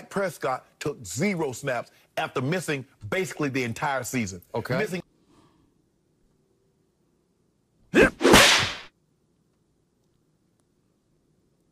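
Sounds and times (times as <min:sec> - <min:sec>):
faint low hum: 0:00.0 - 0:08.1, 0:08.9 - 0:11.7
speech: 0:00.2 - 0:05.0
slap sound effect: 0:08.1 - 0:08.9.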